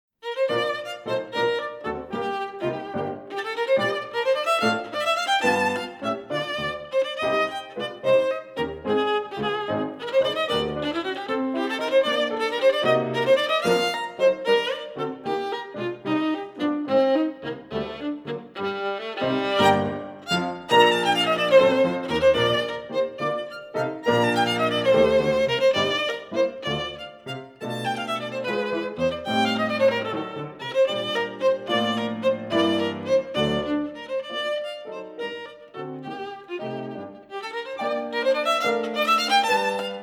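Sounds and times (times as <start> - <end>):
classical violin and piano: 0.2 - 40.0.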